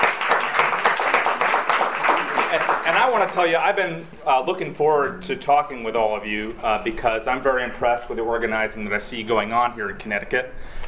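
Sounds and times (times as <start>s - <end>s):
audience applause for conference organizers: 0.0s - 3.7s
speech: 3.1s - 10.8s.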